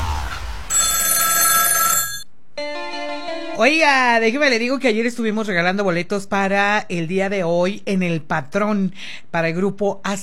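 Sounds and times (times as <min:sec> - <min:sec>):
telephone bell ringing: 0:00.7 - 0:02.3
speech: 0:03.6 - 0:10.2.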